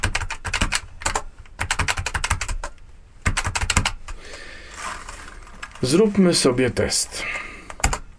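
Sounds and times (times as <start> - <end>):
key presses on an 8-dot braille keyboard: 0.0 - 4.1, 7.7 - 8.0
person speaking: 4.8 - 7.8.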